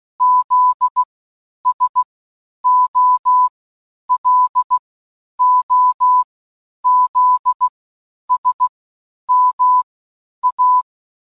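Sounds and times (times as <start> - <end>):
morse code beeps: 0.2 - 1.1, 2.6 - 3.5, 4.1 - 4.8, 5.4 - 6.3, 6.9 - 7.7, 8.3 - 8.7, 9.3 - 10.9.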